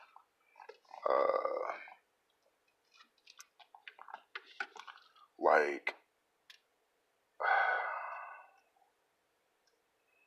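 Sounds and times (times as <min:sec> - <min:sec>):
person sipping a drink, slurping and swallowing: 0:00.0 - 0:02.1, 0:02.8 - 0:05.3, 0:07.4 - 0:08.7
speech: 0:05.5 - 0:05.9
breathy exhale: 0:07.4 - 0:08.6.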